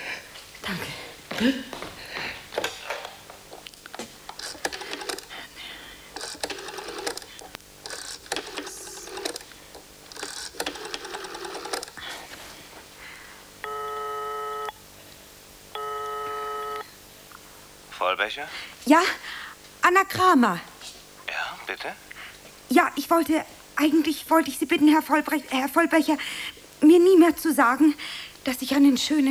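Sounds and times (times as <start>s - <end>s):
speech: 0.7s - 1.8s, 18.4s - 19.2s, 19.9s - 20.7s, 21.8s - 22.0s, 23.0s - 29.2s
telephone being dialed with mechanical clicking: 3.7s - 12.1s
telephone ringing tones: 3.9s - 12.0s, 13.6s - 15.0s, 15.6s - 17.1s.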